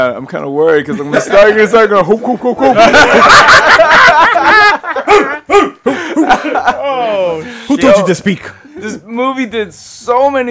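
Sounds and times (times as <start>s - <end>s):
speech: 0.0s - 10.5s
laughter: 0.9s - 7.4s
people barking and yipping in imitation of dogs: 5.0s - 5.8s.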